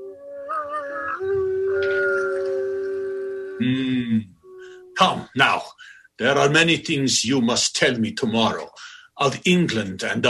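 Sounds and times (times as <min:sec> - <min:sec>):
wolves howling in chorus: 0:00.0 - 0:03.6
speech: 0:03.6 - 0:04.3, 0:05.0 - 0:10.2.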